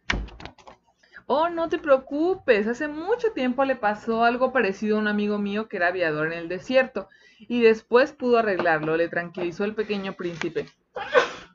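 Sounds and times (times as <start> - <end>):
speech: 1.3 - 11.2
sneeze: 11.0 - 11.5.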